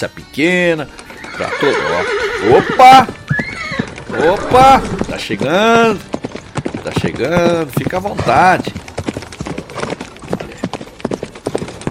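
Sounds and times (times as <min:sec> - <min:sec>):
speech: 0:00.0 - 0:03.2, 0:04.1 - 0:06.2, 0:06.8 - 0:08.8
horse hooves clip-clopping carrying a rider: 0:00.0 - 0:11.8.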